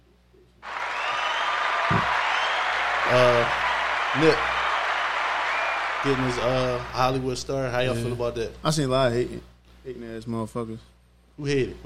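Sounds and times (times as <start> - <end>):
canned applause from a soundboard clap button: 0.6 - 8.0
speech: 4.2 - 4.5, 6.0 - 11.8.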